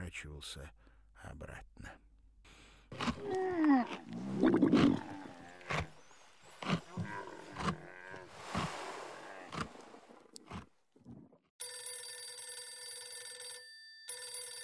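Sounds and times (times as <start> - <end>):
speech: 0.1 - 2.1, 2.9 - 5.8
large wild cat roaring and growling: 2.9 - 10.1
telephone ringing with electronic trill: 11.6 - 14.6.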